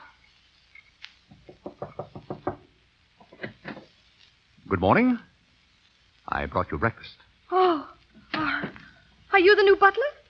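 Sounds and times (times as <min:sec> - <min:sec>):
rapid knocks on a wooden door: 0:01.3 - 0:02.7
speech: 0:04.7 - 0:05.3, 0:06.3 - 0:07.8, 0:09.4 - 0:10.2.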